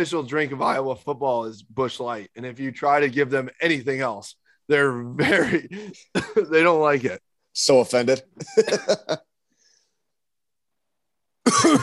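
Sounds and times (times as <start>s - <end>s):
speech: 0.0s - 9.3s, 11.5s - 11.8s
harsh coughs: 5.2s - 6.5s, 11.4s - 11.8s
laughter: 8.4s - 9.3s.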